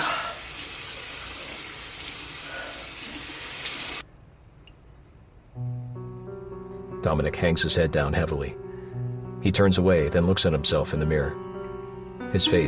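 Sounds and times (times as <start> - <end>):
faucet running in a steady hissing gush: 0.0 - 4.0
speech: 7.0 - 8.6, 9.4 - 11.5, 12.3 - 12.6.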